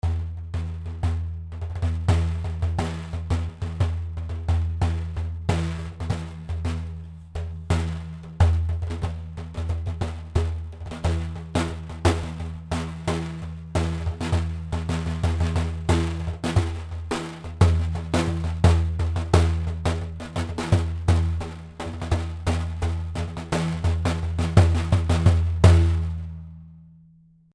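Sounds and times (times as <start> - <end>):
African drum: 0.0 - 26.6.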